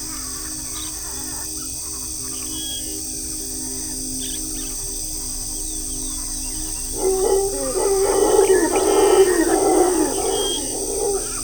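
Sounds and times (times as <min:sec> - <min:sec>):
steady high insect hiss in a Costa Rican forest: 0:00.0 - 0:11.4
howler monkeys roaring in a Costa Rican forest: 0:06.8 - 0:11.4
bird calls in a Costa Rican forest: 0:06.9 - 0:11.4.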